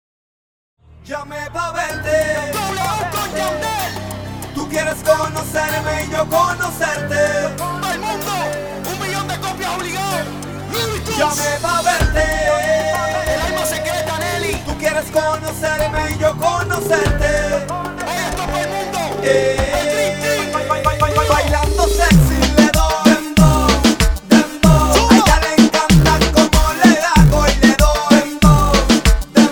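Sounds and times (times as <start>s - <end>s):
reggaeton music mix by a mobile DJ: 1.0s - 29.5s.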